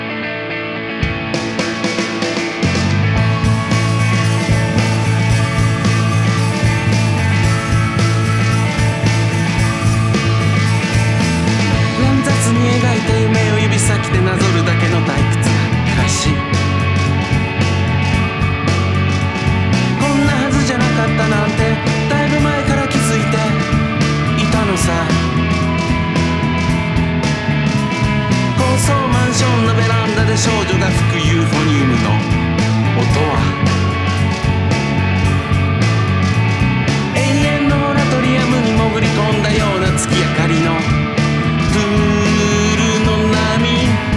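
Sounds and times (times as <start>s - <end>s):
full band song with drums, bass and layered instruments: 0.8s - 44.1s
singing voice over band mix: 11.7s - 17.0s, 19.9s - 26.0s, 28.3s - 34.1s, 37.1s - 44.1s.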